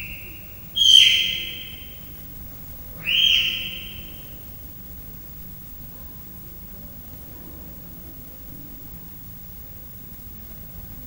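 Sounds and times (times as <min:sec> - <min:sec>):
three-month-old leopard cub chirping at a zoo: 0:00.0 - 0:04.4.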